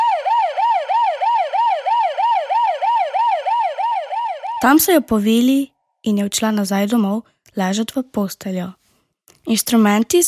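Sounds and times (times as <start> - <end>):
ambulance siren in a fast yelping pattern: 0.0 - 5.1
speech: 4.6 - 8.8, 9.4 - 10.2.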